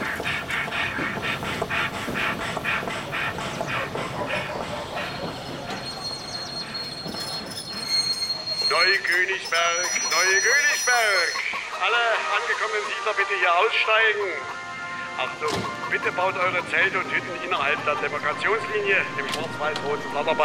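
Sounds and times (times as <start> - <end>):
ICE train wheels clattering on rails: 0.0 - 20.4
ICE train brakes squealing as it slows to a stop: 2.7 - 12.0
speech: 8.8 - 14.6, 15.2 - 20.4.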